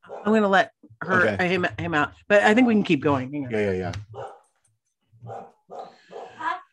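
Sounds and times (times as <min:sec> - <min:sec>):
dogs barking at a delivery: 0:00.0 - 0:00.4, 0:02.4 - 0:03.0, 0:04.0 - 0:04.6, 0:05.2 - 0:06.5
speech: 0:00.2 - 0:04.2.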